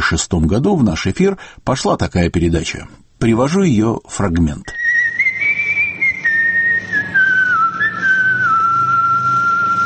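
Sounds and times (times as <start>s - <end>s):
speech: 0.1s - 4.8s
whistled melody of clandestine radio station call sign: 4.7s - 9.8s.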